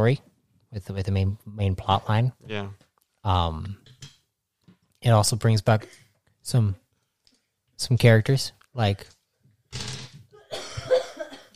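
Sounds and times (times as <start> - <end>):
speech: 0.0 - 3.9, 5.0 - 6.8, 7.8 - 9.9
person coughing: 10.3 - 11.5.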